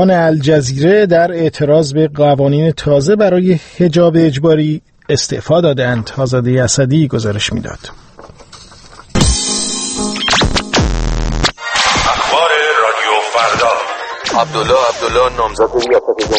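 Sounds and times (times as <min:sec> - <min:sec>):
speech: 0:00.0 - 0:08.1, 0:14.4 - 0:16.3
radio jamming static: 0:10.2 - 0:16.3.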